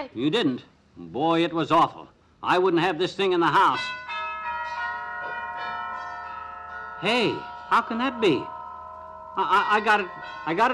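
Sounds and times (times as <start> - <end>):
speech: 0.0 - 4.0, 7.0 - 8.6, 9.4 - 10.7
church bells ringing in a peal: 3.6 - 10.7.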